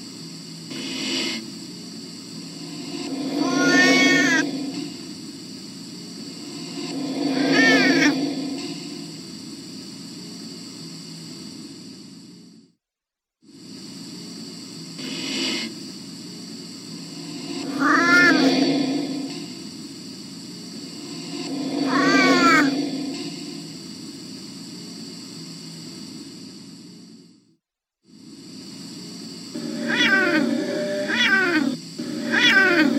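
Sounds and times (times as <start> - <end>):
hiss and hum: 0.0 - 32.9
cat meowing: 3.4 - 4.4, 17.7 - 18.4, 21.9 - 22.7, 29.8 - 32.9.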